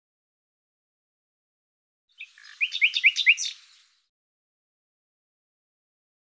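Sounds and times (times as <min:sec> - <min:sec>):
bird chirping: 0:02.1 - 0:04.1.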